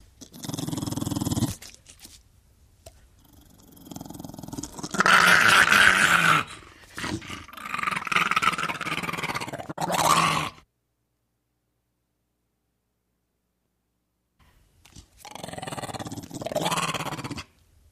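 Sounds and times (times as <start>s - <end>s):
pit bull gargling: 0.2s - 1.8s, 3.2s - 10.6s, 15.0s - 17.6s.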